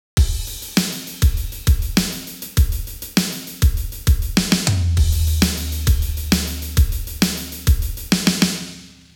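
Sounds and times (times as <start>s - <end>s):
drums: 0.0s - 9.1s.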